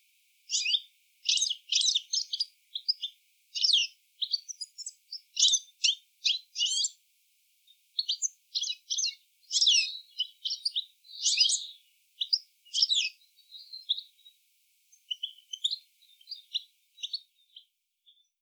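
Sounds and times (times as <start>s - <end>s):
European goldfinch Carduelis carduelis twittering: 0.5s - 7.0s, 8.0s - 14.3s, 14.9s - 17.7s.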